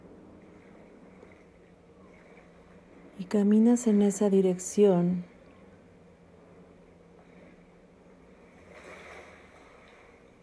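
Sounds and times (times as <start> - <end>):
ocean waves washing ashore: 0.0 - 10.4
speech: 3.2 - 5.3.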